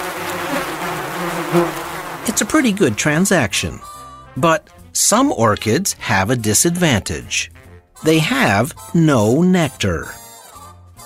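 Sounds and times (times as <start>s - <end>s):
bees buzzing in flight: 0.0s - 4.1s
speech: 1.5s - 10.2s.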